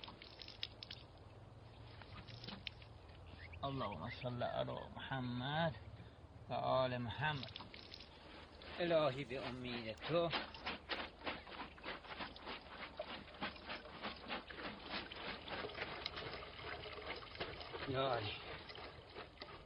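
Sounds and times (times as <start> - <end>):
speech: 3.6 - 5.9, 6.5 - 7.6, 8.8 - 10.5, 17.9 - 18.5
pomegranate juice splashing and pouring into large cauldrons: 11.5 - 19.6.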